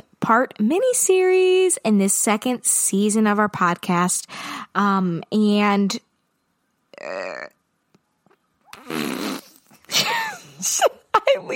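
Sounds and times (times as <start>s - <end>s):
speech: 0.3s - 6.1s, 7.0s - 7.6s, 9.9s - 11.5s
person blowing raspberry fart noises with their mouth: 8.6s - 9.8s.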